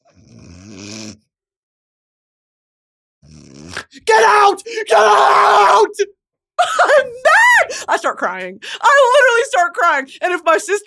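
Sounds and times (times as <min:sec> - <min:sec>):
voice imitating snoring: 0:00.0 - 0:01.3, 0:03.2 - 0:03.9
speech: 0:04.2 - 0:10.8.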